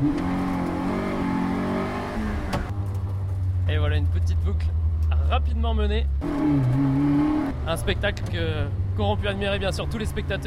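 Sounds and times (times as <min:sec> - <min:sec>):
AX rally car accelerating hard out of a handbrake hairpin at Plouay: 0:00.0 - 0:02.7, 0:06.2 - 0:08.1
speech: 0:04.0 - 0:10.4.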